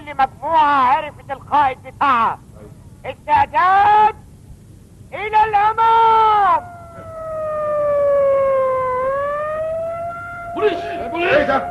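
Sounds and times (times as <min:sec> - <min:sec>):
speech: 0:00.1 - 0:04.2, 0:05.1 - 0:06.7, 0:10.6 - 0:11.6
police siren wailing in a drama: 0:06.1 - 0:11.6.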